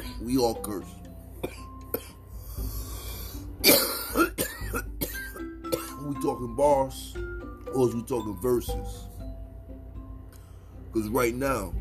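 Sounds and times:
low hum: 0.0s - 11.7s
speech: 0.2s - 1.6s, 6.4s - 7.1s, 7.8s - 9.1s, 11.0s - 11.7s
person coughing: 1.4s - 2.2s, 3.6s - 6.1s.

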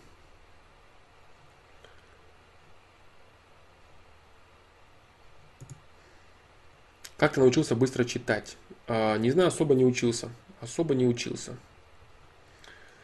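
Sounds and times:
low hiss: 0.0s - 13.0s
computer mouse clicks while scrolling: 5.6s - 5.9s
speech: 7.2s - 11.7s.

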